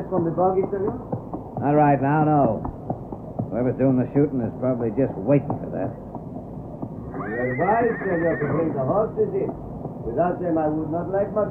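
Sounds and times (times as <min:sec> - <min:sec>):
speech: 0:00.1 - 0:02.8, 0:03.5 - 0:06.0, 0:07.3 - 0:11.4
horse neighing: 0:07.0 - 0:09.0.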